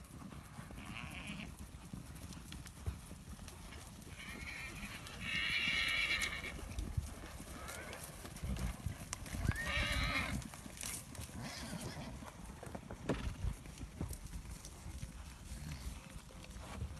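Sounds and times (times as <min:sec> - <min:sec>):
Arabian horse hoof clops outdoors: 0:00.0 - 0:16.9
horse hooves shuffling outdoors: 0:00.0 - 0:16.9
Arabian horse neighing outdoors: 0:04.2 - 0:06.6, 0:09.5 - 0:10.4.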